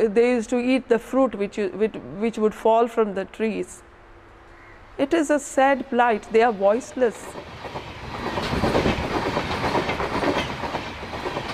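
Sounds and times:
speech: 0.0s - 3.9s, 5.0s - 7.8s
heavy coal train rolling past on the tracks: 4.3s - 11.5s
coal train wagons clattering over the rails: 7.2s - 11.5s.

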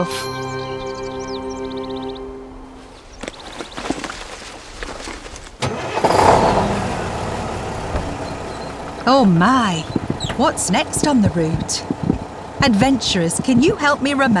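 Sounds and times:
speech: 0.0s - 0.4s, 9.1s - 11.9s, 12.6s - 14.3s
melodic chime: 0.0s - 2.6s
bus engine cranking and idling: 0.0s - 3.1s, 5.5s - 14.3s.

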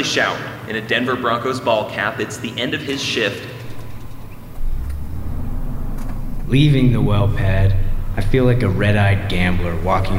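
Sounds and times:
speech: 0.0s - 3.6s, 6.5s - 10.1s
cars and trucks driving out of a mine: 3.6s - 10.1s.

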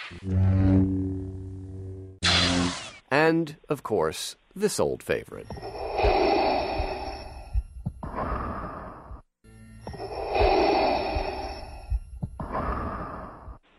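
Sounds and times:
speech: 0.1s - 1.0s, 3.3s - 5.8s
masked film villain's mechanical respirator breathing: 5.5s - 9.2s, 9.9s - 13.6s.

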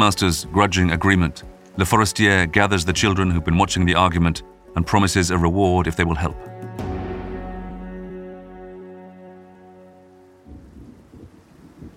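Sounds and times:
speech: 0.0s - 6.5s
heavy rain patter: 0.0s - 11.9s
low sustained droning tone: 6.8s - 10.8s.

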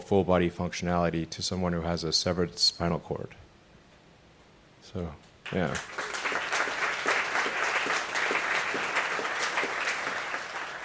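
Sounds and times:
speech: 0.0s - 3.4s, 4.8s - 6.0s
muted audience applause: 5.5s - 10.8s.

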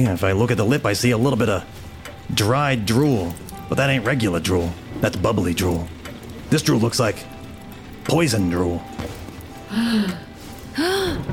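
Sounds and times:
speech: 0.0s - 7.3s, 8.0s - 11.3s
person gasping: 9.6s - 11.3s.

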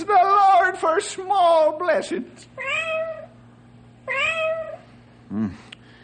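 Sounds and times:
steady low hum: 0.0s - 6.0s
speech: 1.0s - 2.9s, 5.3s - 5.7s
cat meowing inside a wall: 2.6s - 3.4s, 4.1s - 4.9s.

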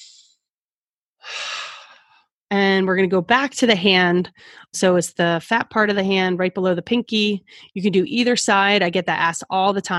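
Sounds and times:
deep breathing during a guided relaxation exercise: 1.2s - 2.3s
speech: 2.8s - 9.9s.

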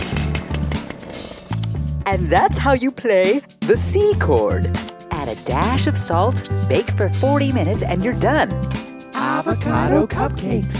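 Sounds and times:
chainsaw engine revving: 0.0s - 1.7s
speech: 2.1s - 8.8s, 9.4s - 10.7s.

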